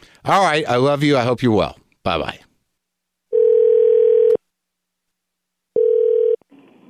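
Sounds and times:
speech: 0:00.2 - 0:02.4
telephone line ringing tone on a call to a hotel: 0:03.3 - 0:04.4, 0:05.8 - 0:06.4.

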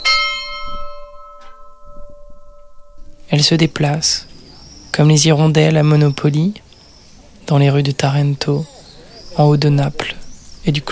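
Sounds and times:
faint clang: 0:00.0 - 0:03.2
church bell striking with deep metallic tone: 0:00.0 - 0:04.2
speech: 0:03.3 - 0:04.3, 0:05.0 - 0:06.7, 0:07.5 - 0:08.7, 0:09.4 - 0:10.8.

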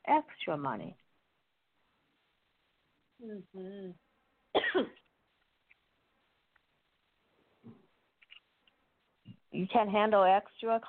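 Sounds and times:
speech: 0:00.1 - 0:01.0, 0:03.2 - 0:05.0, 0:09.6 - 0:10.8
person coughing sharply: 0:04.6 - 0:05.0.

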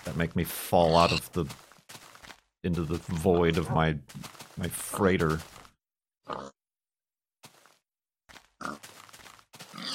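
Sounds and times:
speech: 0:00.1 - 0:01.7, 0:02.6 - 0:05.6
pig grunting and oinking: 0:00.8 - 0:01.4, 0:06.2 - 0:06.6, 0:08.6 - 0:08.8, 0:09.7 - 0:09.9.

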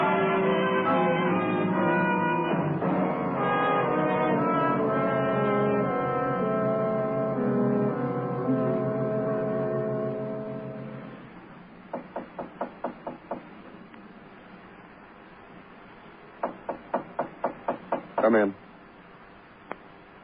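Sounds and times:
low hum: 0:00.0 - 0:20.2
sharp knocking on a door: 0:11.9 - 0:13.6, 0:16.4 - 0:18.4.

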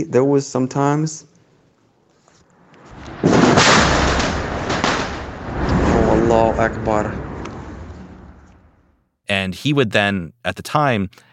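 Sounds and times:
speech: 0:00.0 - 0:01.3, 0:06.3 - 0:07.3, 0:09.3 - 0:11.3
explosions from American airstrikes on a city: 0:02.9 - 0:09.0.

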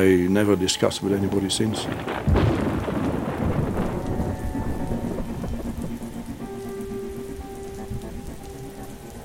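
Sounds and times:
speech: 0:00.0 - 0:02.6
steady heavy rain pouring down: 0:00.0 - 0:09.2
deep rumble of thunder: 0:01.0 - 0:09.2.

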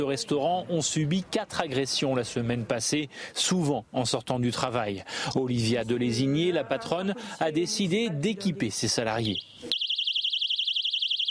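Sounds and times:
speech: 0:00.0 - 0:09.8
personal alarm device blaring a shrill warbling electronic tone: 0:09.2 - 0:11.2.

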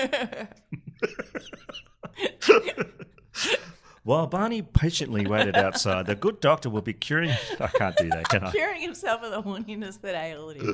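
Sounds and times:
speech: 0:00.0 - 0:00.7, 0:04.1 - 0:10.7
laughter: 0:00.0 - 0:03.8, 0:05.0 - 0:09.7
person coughing: 0:02.3 - 0:03.7.

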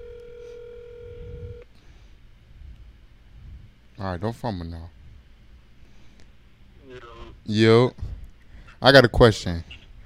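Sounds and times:
phone's outgoing ringing tone: 0:00.0 - 0:01.6
faint low noise: 0:00.0 - 0:10.0
speech: 0:04.0 - 0:05.0, 0:07.5 - 0:08.1, 0:08.8 - 0:09.8.

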